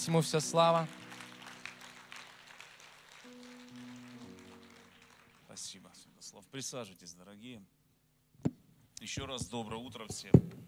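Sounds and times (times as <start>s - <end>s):
speech: 0.0s - 1.0s, 5.7s - 7.8s, 9.0s - 10.6s
audience applauding: 0.1s - 6.1s.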